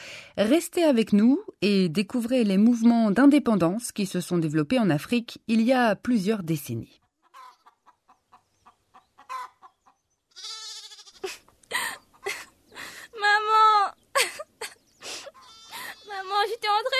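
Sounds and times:
speech: 0.4 - 7.0
chickens clucking: 7.0 - 10.2, 11.4 - 13.0, 14.8 - 16.0
several chickens squawking frantically: 7.0 - 16.9.

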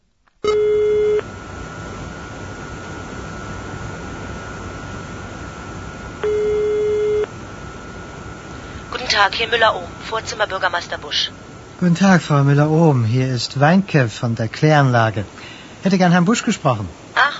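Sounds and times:
steady hiss of telephone line noise: 0.0 - 17.3
electronic telephone line ring tones through the earpiece: 0.4 - 1.2, 6.2 - 7.3
speech: 9.2 - 17.0.

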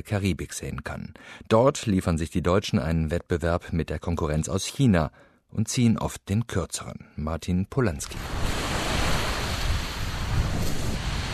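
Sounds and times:
speech: 0.0 - 8.6
light breeze rustling on a Caribbean beach: 8.0 - 11.3
surf washing onto a Caribbean beach: 8.1 - 11.3.

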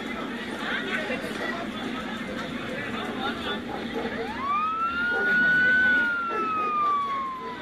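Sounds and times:
crowd chatter on streets in Kenya: 0.0 - 7.6
traffic noise on streets in Kenya: 0.0 - 7.6
siren on streets in Kenya: 4.2 - 7.6.

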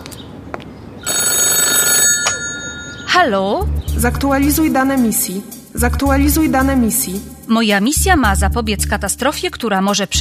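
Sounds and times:
telephone ringing with an electronic trill: 1.0 - 3.3
speech: 3.2 - 10.1.

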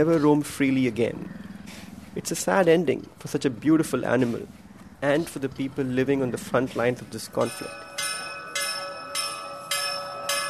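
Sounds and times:
speech: 0.0 - 1.4, 2.2 - 8.1
temple bells ringing for evening prayers: 7.2 - 10.4.

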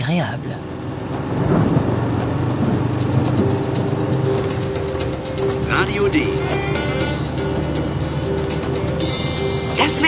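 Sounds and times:
speech: 0.1 - 1.6, 5.8 - 6.8
heavy rain downpour: 0.8 - 10.0
deep thunder rumbling: 1.1 - 10.0.

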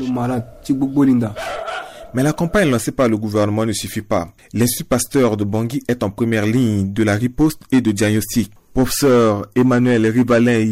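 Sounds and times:
speech: 0.0 - 1.5, 2.1 - 10.7
dog barking at a veterinary clinic: 1.3 - 2.7.

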